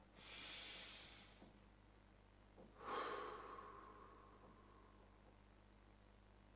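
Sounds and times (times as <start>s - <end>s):
slow relaxing breathing, exhale and inhale: 0.0s - 1.6s, 2.6s - 5.3s.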